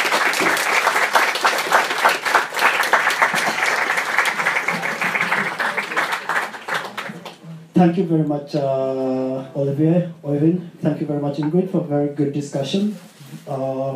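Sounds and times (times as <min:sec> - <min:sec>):
room full of people applauding: 0:00.0 - 0:07.4
speech: 0:07.8 - 0:13.9.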